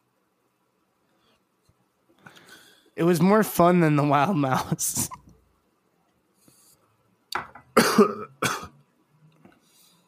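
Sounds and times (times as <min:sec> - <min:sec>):
speech: 0:03.0 - 0:05.2
harsh coughs: 0:07.8 - 0:08.8.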